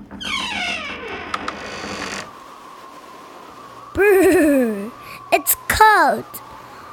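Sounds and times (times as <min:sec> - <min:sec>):
wooden door creaking open: 0:00.0 - 0:02.4
laughter: 0:04.0 - 0:05.2
speech: 0:05.4 - 0:06.5.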